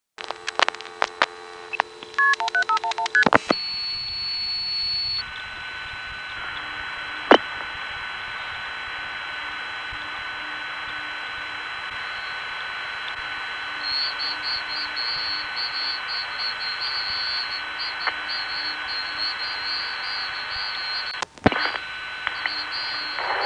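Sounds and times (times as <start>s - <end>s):
steady humming telephone line tones: 0.2s - 23.4s
payphone touch-tone dialing a long-distance call: 2.1s - 5.2s, 13.8s - 23.4s.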